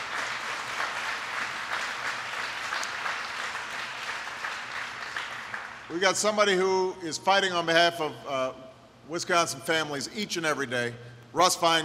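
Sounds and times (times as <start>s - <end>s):
audience round of applause: 0.0s - 6.0s
speech: 5.9s - 11.8s.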